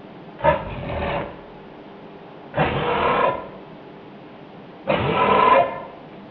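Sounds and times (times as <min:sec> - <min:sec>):
Casuarius casuarius: 0:00.4 - 0:01.9, 0:02.5 - 0:03.8, 0:04.8 - 0:06.1.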